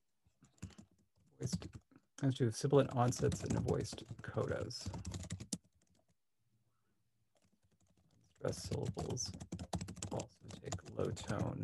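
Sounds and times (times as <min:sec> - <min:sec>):
typing on a computer keyboard: 0:00.4 - 0:01.8, 0:02.8 - 0:06.1, 0:07.4 - 0:11.6
speech: 0:01.4 - 0:05.2, 0:08.4 - 0:09.6, 0:11.0 - 0:11.6.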